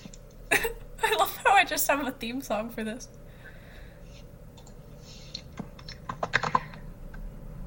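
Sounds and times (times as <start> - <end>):
speech: 1.7 - 3.2
typing on a computer keyboard: 5.8 - 6.8.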